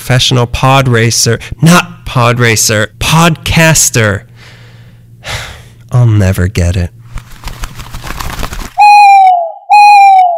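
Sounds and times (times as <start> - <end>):
speech: 0.1 - 4.3, 5.9 - 7.0
owl hooting: 8.8 - 10.3.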